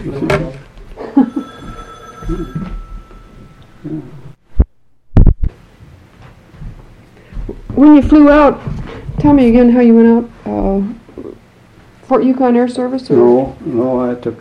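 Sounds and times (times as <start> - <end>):
speech: 0.0 - 0.6, 2.3 - 2.8, 7.8 - 11.0, 12.1 - 14.4
telephone ringing with an electronic trill: 1.1 - 4.4.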